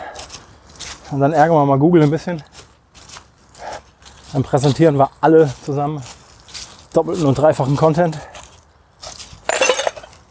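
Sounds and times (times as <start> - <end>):
speech: 1.1 - 2.5, 4.3 - 6.2, 6.9 - 8.3
glass breaking into shards: 9.5 - 10.1.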